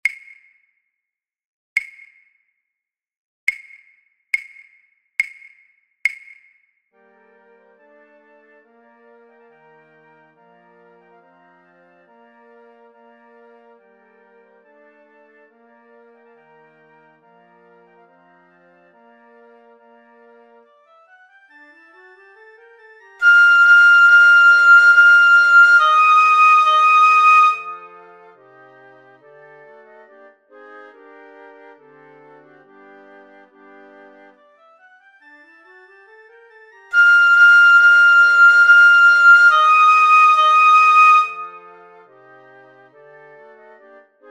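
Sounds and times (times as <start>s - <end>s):
piccolo: 21.6s - 28.4s, 36.7s - 42.1s.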